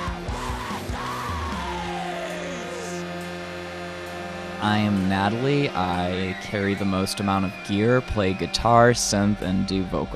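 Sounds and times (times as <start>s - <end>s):
hardcore punk lead singer screaming: 0.0s - 3.1s
dense distorted hardcore punk band music with droning tones: 0.0s - 10.1s
speech: 4.6s - 10.1s.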